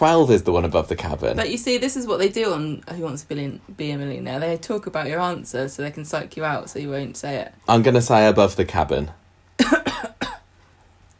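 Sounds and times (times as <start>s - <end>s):
speech: 0.0s - 9.9s
person coughing deliberately: 9.6s - 10.5s.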